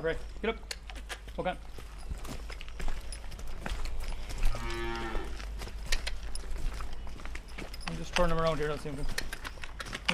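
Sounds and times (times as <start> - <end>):
speech: 0.0 - 0.8, 1.4 - 1.8, 7.9 - 9.3
scattered thuds of hooves shuffling: 0.0 - 10.1
steady outdoor noise: 0.0 - 10.1
working draft ox mooing: 4.5 - 5.4.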